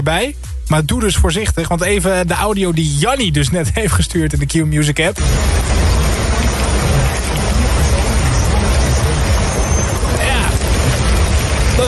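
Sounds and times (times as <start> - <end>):
speech: 0.0 - 6.2
heavy thunderstorm rain drumming on a car roof: 5.2 - 11.8
thunderstorm deep rumbling: 5.2 - 11.8.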